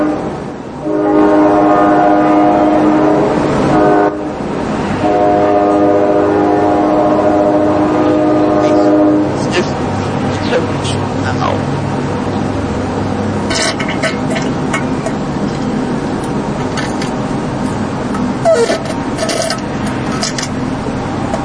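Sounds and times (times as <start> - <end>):
train horn blasts: 0.0 - 9.4
steady roar of train wheels on track: 0.0 - 21.4
train rumbling past: 0.0 - 21.4.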